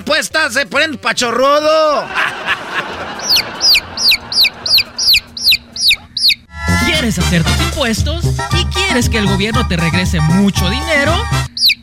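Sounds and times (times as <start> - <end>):
speech: 0.1 - 2.5, 7.1 - 11.4
laughter: 1.9 - 6.1
low hum: 2.0 - 11.8
chicken clucking in a radio commercial for a tax-filing service: 2.9 - 6.4.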